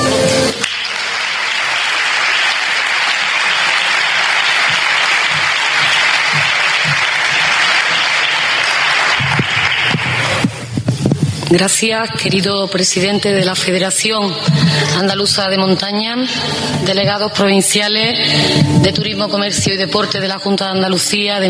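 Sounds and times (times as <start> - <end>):
audience applause: 0.0 - 10.8
speech: 11.5 - 21.4.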